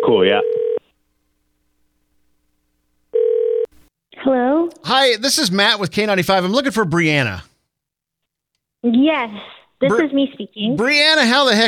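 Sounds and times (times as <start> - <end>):
steady electronic telephone line tone as a call is placed: 0.0 - 0.9, 3.1 - 3.7
speech: 4.3 - 7.5, 8.8 - 11.6.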